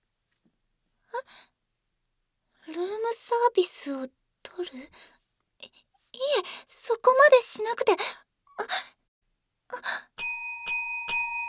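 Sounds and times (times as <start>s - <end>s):
speech: 2.8s - 5.2s, 6.2s - 8.9s, 9.7s - 10.1s
desk call bell dings: 10.2s - 11.4s.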